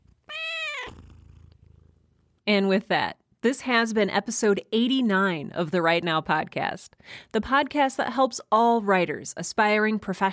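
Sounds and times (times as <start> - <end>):
domestic cat purring: 0.0 - 2.5
speech: 2.5 - 10.3.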